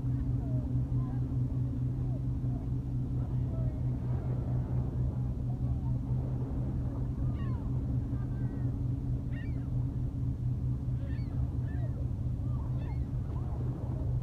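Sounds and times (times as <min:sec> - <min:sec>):
steady low engine hum on a lake beach: 0:00.0 - 0:14.2
faint bird calls or honks: 0:07.2 - 0:10.1, 0:10.9 - 0:13.6.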